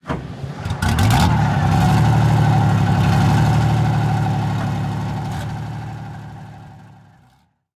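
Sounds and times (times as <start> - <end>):
tank engine starting: 0.0 - 7.5.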